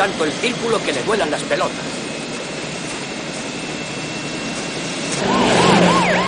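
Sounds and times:
speech: 0.0s - 2.1s
low traffic rumble: 0.0s - 6.2s
police car sirens wailing as police cars cross a street: 4.6s - 6.2s.

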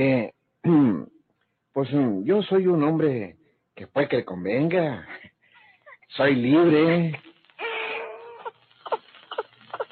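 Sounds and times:
speech: 0.0s - 1.1s, 1.8s - 5.3s, 6.1s - 7.3s
baby crying: 6.7s - 9.9s.

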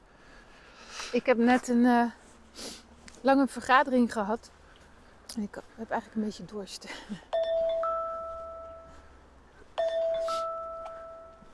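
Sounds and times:
speech: 1.1s - 4.6s, 5.3s - 7.3s
two-note electronic timer chime: 7.4s - 9.1s, 9.8s - 11.5s.

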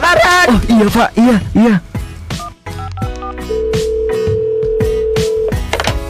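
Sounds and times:
rhythmic punchy musical backing: 0.0s - 6.0s
speech: 0.5s - 1.9s
dual-pitch telephone keypad beeps: 2.4s - 5.6s
long steady telephone tone: 2.9s - 5.6s.

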